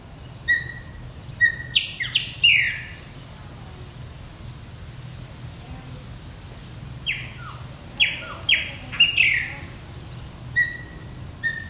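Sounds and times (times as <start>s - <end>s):
chopi blackbird whistling: 0.4s - 3.0s, 7.1s - 9.6s, 10.5s - 11.6s.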